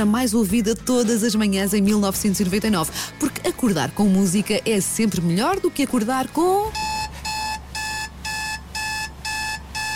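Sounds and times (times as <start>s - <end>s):
speech: 0.0s - 7.0s
shrill electronic alarm clock beeping: 6.7s - 9.9s.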